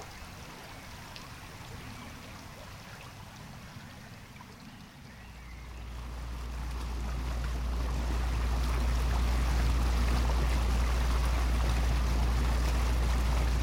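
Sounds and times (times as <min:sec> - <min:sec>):
fishing boat engine droning travelling upriver: 0:00.0 - 0:13.6
water rushing and splashing along the boat hull: 0:00.0 - 0:13.6.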